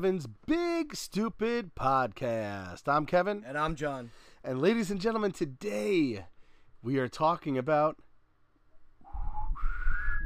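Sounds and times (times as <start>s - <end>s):
speech: 0.0s - 8.1s
person attempting to whistle: 9.0s - 10.2s.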